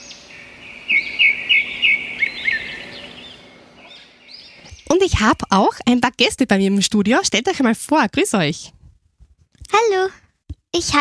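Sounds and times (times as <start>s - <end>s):
steady hiss: 0.0s - 5.6s
bird chirping bright high notes: 0.0s - 5.8s
speech: 4.9s - 8.8s, 9.7s - 10.9s.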